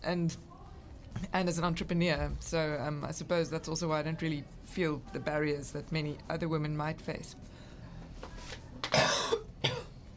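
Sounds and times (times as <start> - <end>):
speech: 0.0 - 0.6, 1.2 - 7.6
harsh breathy coughs: 8.9 - 10.0.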